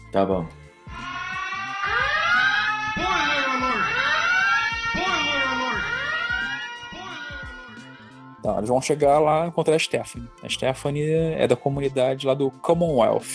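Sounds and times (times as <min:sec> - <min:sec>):
speech: 0:00.1 - 0:00.6, 0:08.4 - 0:13.3
wailing siren sound effect for spoiler warning: 0:00.9 - 0:08.4.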